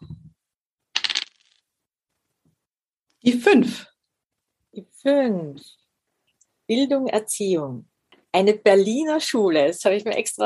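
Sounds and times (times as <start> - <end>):
dice tumbling across a hard surface: 1.0 - 1.6
speech: 3.2 - 3.9, 4.8 - 5.8, 6.7 - 10.4.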